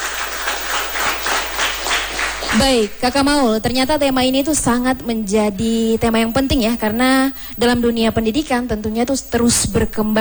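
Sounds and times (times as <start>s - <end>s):
audience applause at a talk show: 0.0s - 3.0s
speech: 2.6s - 10.1s.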